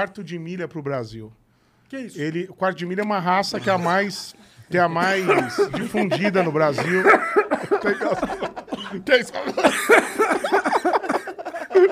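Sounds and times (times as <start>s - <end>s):
speech: 0.0s - 11.1s
wheezy laughing: 3.6s - 11.8s
rough coughing: 5.1s - 5.9s, 6.8s - 10.5s.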